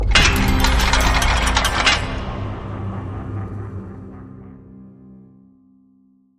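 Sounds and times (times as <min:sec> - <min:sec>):
gate opening: 0:00.0 - 0:03.9.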